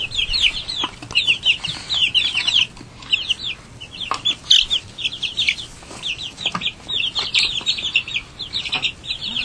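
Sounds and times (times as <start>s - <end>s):
flock of chickens clucking and peeping: 0.0s - 9.4s.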